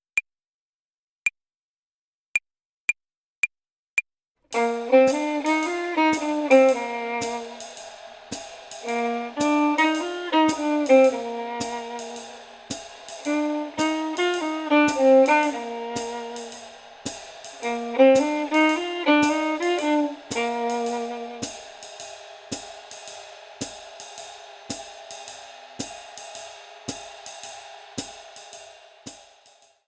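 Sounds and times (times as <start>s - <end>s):
jazz violin playing swing phrasing exercise: 4.5s - 21.6s.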